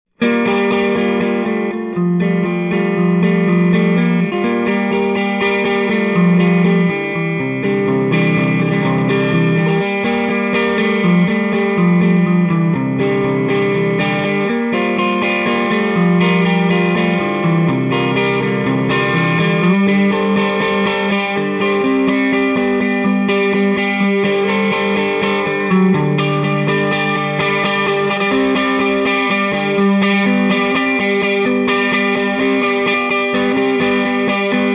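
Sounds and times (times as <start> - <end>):
clean guitar through EL34 tube amplifier: 0.1 - 34.7.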